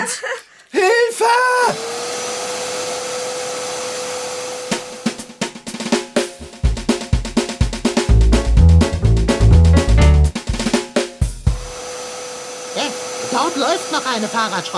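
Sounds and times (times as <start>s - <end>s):
vacuum cleaner running: 1.2s - 5.4s, 11.5s - 14.7s
rhythmic bouncy thumping music: 5.0s - 11.7s
speech: 14.1s - 14.7s.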